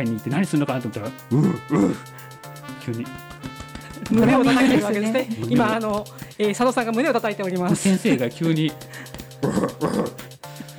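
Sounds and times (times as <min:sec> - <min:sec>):
speech: 0:00.0 - 0:10.3
person at a zoo imitating an ape-like howling call toward a mandrill: 0:01.3 - 0:02.1
laughter: 0:03.8 - 0:06.1, 0:07.6 - 0:08.4, 0:09.0 - 0:10.7.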